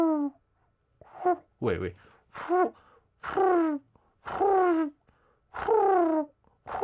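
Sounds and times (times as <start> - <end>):
voice imitating pigeon cooing: 0.0 - 0.4, 2.4 - 5.0, 5.6 - 6.8
speech: 1.6 - 5.0, 5.6 - 6.8.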